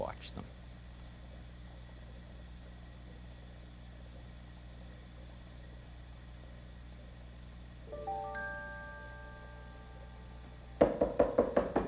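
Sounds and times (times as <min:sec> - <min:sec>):
soft lingering chime of tones: 0:07.9 - 0:10.8
delivery man knocking on a door: 0:10.8 - 0:11.8.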